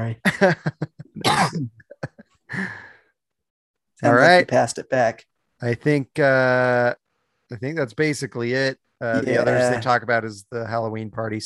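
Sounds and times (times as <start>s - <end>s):
speech: 0.0s - 1.4s, 4.0s - 11.4s
harsh throaty coughs: 1.1s - 2.2s.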